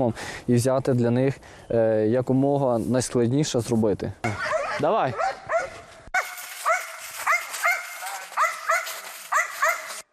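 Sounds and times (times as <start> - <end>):
speech: 0.0 - 5.4
noisy outdoor background: 0.0 - 10.1
military dog barking during attack training: 4.3 - 10.0.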